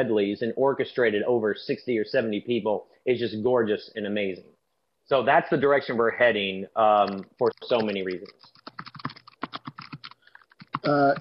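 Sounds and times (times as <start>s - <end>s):
speech: 0.0s - 8.5s, 10.8s - 11.1s
rapid typing on a computer keyboard: 7.0s - 11.1s.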